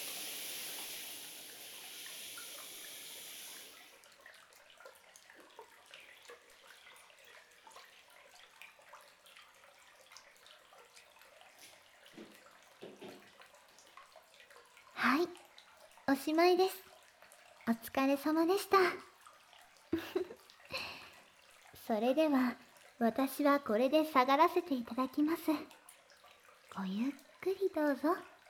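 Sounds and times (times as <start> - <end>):
shower water poured over a person's back while bathing: 0.0 - 16.3
speech: 15.0 - 15.4, 16.1 - 16.8, 17.7 - 19.1, 21.9 - 25.8, 26.8 - 28.3.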